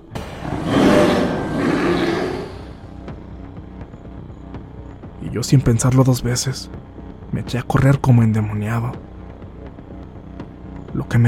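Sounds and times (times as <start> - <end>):
horrible guttural creature roar: 0.1 - 2.8
speech: 5.3 - 9.1, 11.0 - 11.2.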